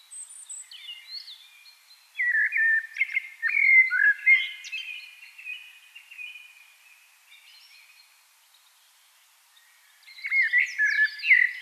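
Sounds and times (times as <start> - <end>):
Eurasian blackbird Turdus merula singing: 0.0 - 6.6, 9.6 - 11.6.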